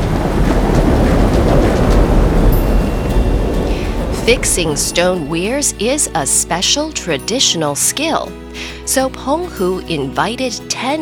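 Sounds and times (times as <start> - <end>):
dense wash of rain-like noise: 0.0 - 6.8
deep thunder rumbling: 0.0 - 7.1
speech: 4.3 - 11.0.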